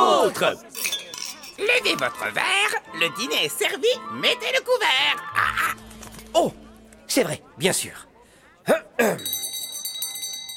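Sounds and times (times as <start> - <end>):
speech: 0.3 - 0.9, 1.6 - 8.1, 8.7 - 9.4
copper bell ringing: 0.8 - 1.6, 9.2 - 10.5.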